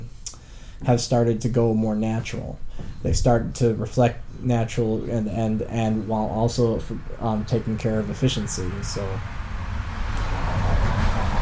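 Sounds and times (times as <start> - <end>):
speech: 0.8 - 9.4
loud trucks passing by: 5.2 - 11.3.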